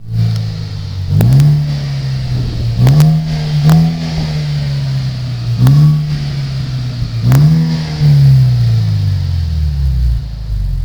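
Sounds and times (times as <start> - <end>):
Audi A4 8E 2L car: 0.0 - 10.8.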